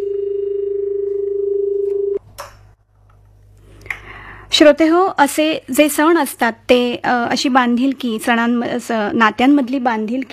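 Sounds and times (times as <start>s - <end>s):
telephone line tone during a phone call: 0.0s - 2.2s
speech: 4.6s - 10.3s.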